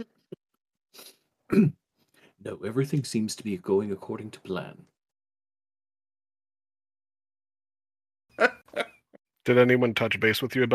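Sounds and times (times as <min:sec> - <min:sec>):
speech: 0:01.0 - 0:01.8, 0:02.4 - 0:04.9, 0:08.4 - 0:08.8, 0:09.5 - 0:10.7
man coughing: 0:01.5 - 0:01.8
throat noises: 0:01.5 - 0:01.8.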